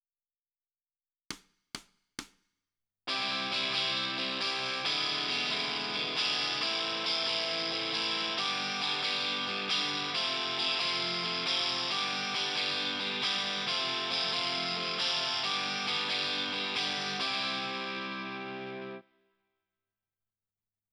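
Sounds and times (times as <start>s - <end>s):
guitar on the left: 3.1s - 19.1s.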